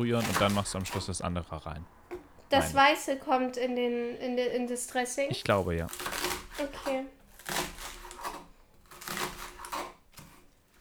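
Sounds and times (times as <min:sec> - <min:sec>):
knife chopping vegetables on a board: 0:00.0 - 0:01.1, 0:05.3 - 0:10.7
speech: 0:00.0 - 0:07.2.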